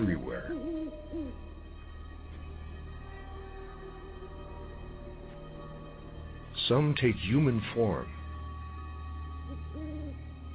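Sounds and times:
owl hooting in a forest: 0:00.0 - 0:01.5, 0:09.5 - 0:10.2
speech: 0:06.7 - 0:08.2.

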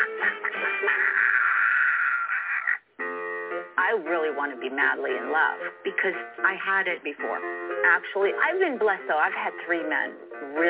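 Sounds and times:
ducks quacking: 0:00.0 - 0:02.9
speech: 0:03.9 - 0:10.6.

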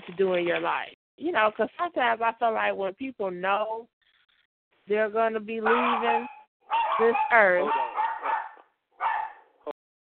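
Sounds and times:
speech: 0:00.1 - 0:04.0, 0:04.9 - 0:07.8
dog barking: 0:05.6 - 0:09.6.

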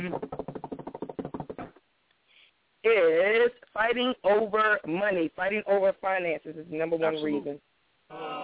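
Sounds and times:
speech: 0:00.0 - 0:00.5, 0:02.8 - 0:08.4
quick drum roll: 0:00.0 - 0:01.8.

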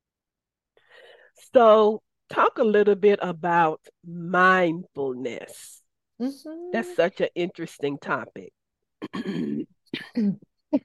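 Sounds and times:
speech: 0:01.4 - 0:10.8
person clearing throat: 0:09.0 - 0:10.8
person coughing: 0:09.0 - 0:10.8.

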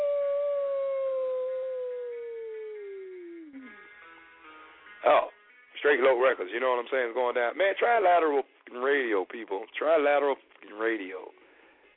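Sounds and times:
dog howling: 0:00.0 - 0:03.7
speech: 0:05.0 - 0:11.4.

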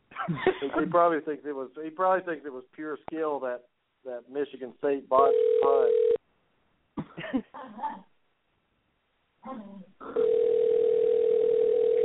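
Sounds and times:
speech: 0:00.3 - 0:06.1, 0:09.4 - 0:10.4
steady loud telephone tone: 0:05.2 - 0:06.2, 0:10.1 - 0:12.0.

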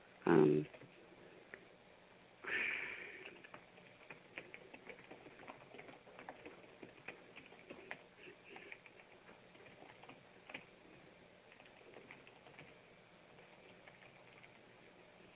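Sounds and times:
speech: 0:00.3 - 0:00.8
typing on a computer keyboard: 0:03.1 - 0:14.6.

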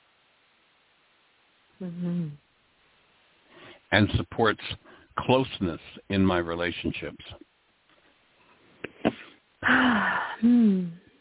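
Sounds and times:
speech: 0:01.8 - 0:02.4, 0:03.9 - 0:07.4, 0:09.7 - 0:11.0
deep breath drawn in with a voiced falling exhale: 0:03.5 - 0:03.9, 0:04.8 - 0:05.2, 0:09.0 - 0:10.5.

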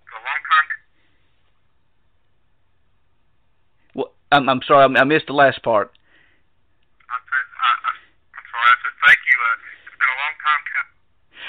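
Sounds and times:
voice over a cell phone line breaking up: 0:00.0 - 0:00.9, 0:07.0 - 0:11.0
speech: 0:04.0 - 0:06.0.

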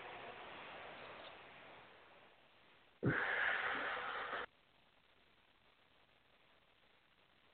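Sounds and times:
deep breath during a guided healing exercise: 0:03.0 - 0:04.5.

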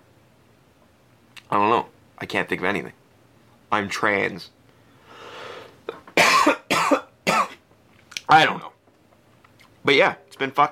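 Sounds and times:
speech: 0:01.5 - 0:03.0, 0:03.7 - 0:04.6, 0:08.3 - 0:08.7, 0:09.8 - 0:10.6
person coughing harshly with a frog in the throat: 0:05.9 - 0:07.6.

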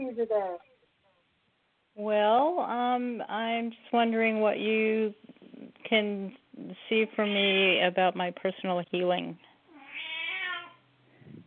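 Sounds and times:
speech: 0:00.1 - 0:00.7, 0:02.0 - 0:09.5
18-year-old blind female cat meowing: 0:09.7 - 0:10.9.

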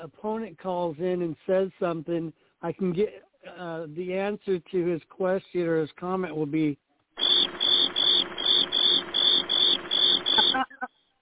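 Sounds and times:
speech: 0:00.0 - 0:06.8
cricket chirping: 0:07.2 - 0:10.6.

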